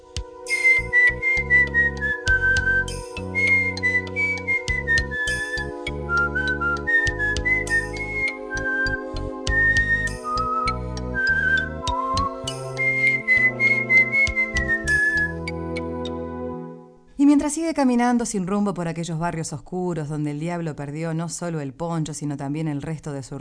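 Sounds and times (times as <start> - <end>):
instrumental backing: 0.0 - 17.2
whistling a sad tune: 0.1 - 16.2
speech: 17.5 - 23.3.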